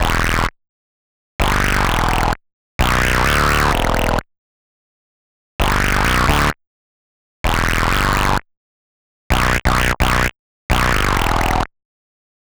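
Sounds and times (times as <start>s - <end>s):
bass line in E minor: 0.0s - 0.5s, 1.4s - 4.2s, 5.6s - 6.6s, 7.5s - 8.4s, 9.3s - 11.7s.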